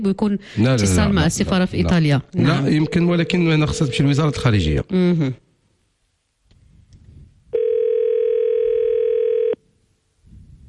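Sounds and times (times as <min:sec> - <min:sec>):
speech: 0:00.0 - 0:05.4
telephone ringing tone on an outgoing call: 0:02.7 - 0:04.5, 0:07.5 - 0:09.6.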